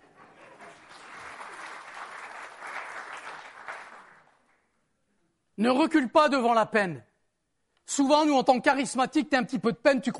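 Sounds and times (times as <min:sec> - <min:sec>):
audience applause: 0:00.0 - 0:04.5
speech: 0:05.6 - 0:07.1, 0:07.9 - 0:10.1.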